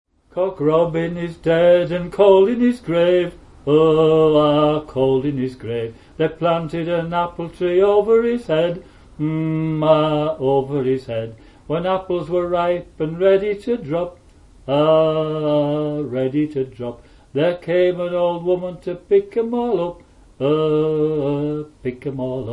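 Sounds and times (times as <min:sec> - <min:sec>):
folk song: 0:00.3 - 0:22.5.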